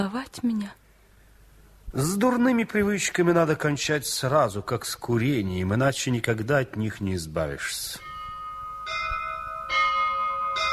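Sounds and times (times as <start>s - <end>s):
speech: 0.0s - 0.8s, 1.9s - 8.1s
church bells ringing: 8.0s - 10.7s.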